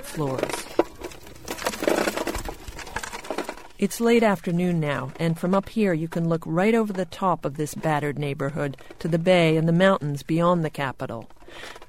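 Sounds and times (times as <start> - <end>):
rock-crushing machines turning earthquake rubble into sand and gravel in Port-au-Prince: 0.0 - 5.6
speech: 0.1 - 0.7, 3.8 - 11.8.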